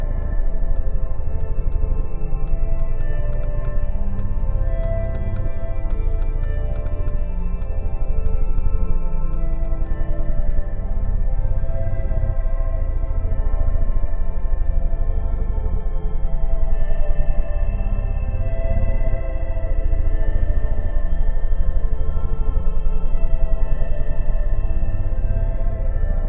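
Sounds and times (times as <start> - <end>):
ambient pause screen game music: 0.0 - 26.2.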